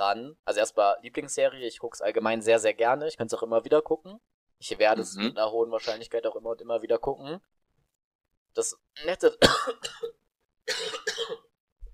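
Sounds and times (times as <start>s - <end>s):
speech: 0.0s - 7.6s, 8.5s - 11.4s
person coughing harshly: 9.4s - 11.5s.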